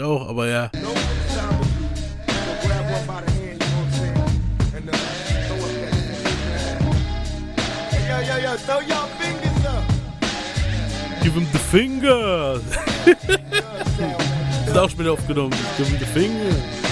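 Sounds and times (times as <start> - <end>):
speech: 0.0 - 1.6, 11.2 - 16.8
rapped vocal line in a hip-hop track: 0.0 - 16.9
punchy drums in a hip-hop track: 0.9 - 8.2, 9.0 - 16.9
heavy steady bass beat in a hip-hop track: 0.9 - 8.4, 9.5 - 16.9
laughter: 12.6 - 15.0.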